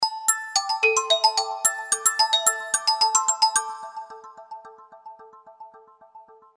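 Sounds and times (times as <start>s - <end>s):
Infinix A88 phone alarm bell: 0.2s - 4.2s.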